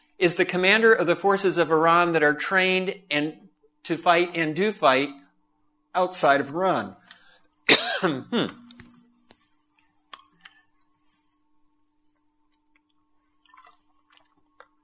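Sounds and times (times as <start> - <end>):
speech: 0.2 - 5.2, 6.0 - 7.0, 8.0 - 8.6
throat clearing from a catch in the throat: 7.7 - 8.7.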